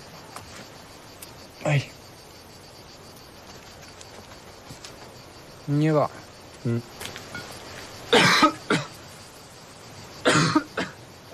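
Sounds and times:
speech: 1.6 - 2.0, 5.7 - 7.0
smoker's raspy coughing: 8.1 - 8.9, 10.2 - 11.0.

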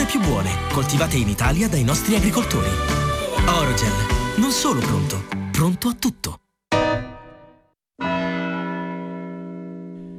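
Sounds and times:
speech: 0.2 - 6.4
church bell striking one o'clock: 6.7 - 10.1.

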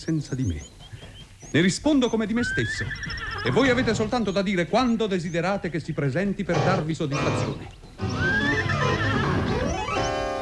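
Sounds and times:
speech: 0.0 - 0.9, 1.5 - 8.2
horses neighing: 2.2 - 4.3, 6.5 - 10.2.

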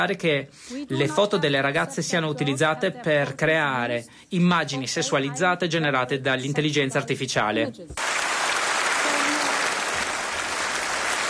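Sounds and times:
speech: 0.0 - 8.4
large assembly applauding in the European Parliament hall: 8.0 - 11.2.

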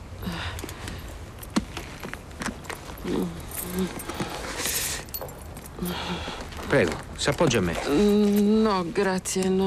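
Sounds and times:
car keys jangling as they are handed over: 1.3 - 6.0
speech: 3.1 - 4.1, 5.8 - 9.6.

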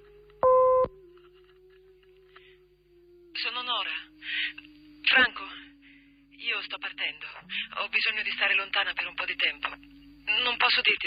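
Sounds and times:
faint continuous hum: 0.0 - 11.0
electronic answering machine beep: 0.4 - 0.9
speech: 7.1 - 11.0.

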